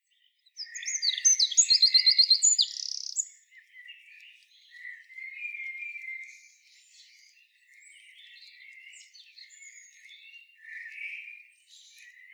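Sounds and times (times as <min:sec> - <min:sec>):
Eurasian wren song with fast even trill: 0:00.0 - 0:12.3
soft chirping: 0:00.6 - 0:03.2.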